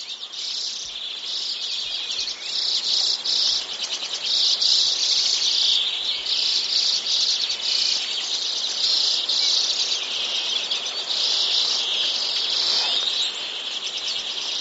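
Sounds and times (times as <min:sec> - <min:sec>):
common redpoll calls: 0:00.0 - 0:14.5.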